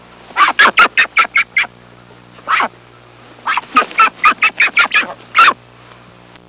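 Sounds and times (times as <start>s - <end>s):
scared duck calling: 0.4s - 1.7s, 2.4s - 2.8s, 3.4s - 5.6s.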